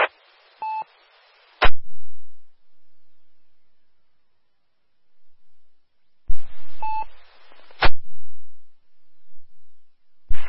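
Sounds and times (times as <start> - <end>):
radio-style static bursts: 0.0 - 2.6, 6.3 - 8.7, 10.3 - 10.4.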